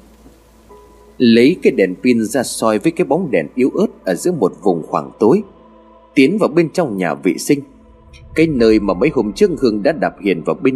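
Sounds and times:
rain falling steadily: 0.0s - 3.4s
speech: 1.2s - 5.6s, 6.2s - 10.7s
faint low rumble: 7.7s - 10.2s.

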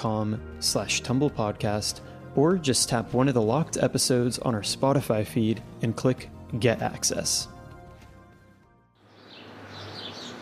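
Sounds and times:
speech: 0.0s - 7.6s
birds chirping in high twittering bursts: 9.0s - 10.3s.

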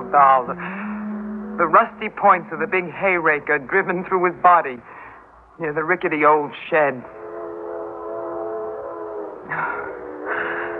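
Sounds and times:
speech: 0.1s - 0.9s, 1.6s - 5.0s, 5.6s - 7.2s, 9.5s - 10.0s
train whistle: 0.6s - 2.7s, 7.1s - 10.7s.

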